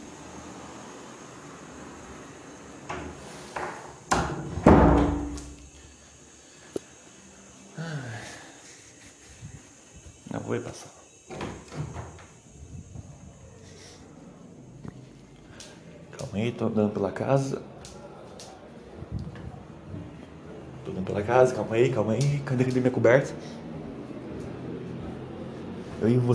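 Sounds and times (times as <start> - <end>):
door swinging shut with a thud: 2.8 - 5.6, 11.3 - 12.4
speech: 10.5 - 11.0, 16.4 - 17.7, 21.2 - 23.6, 26.0 - 26.3.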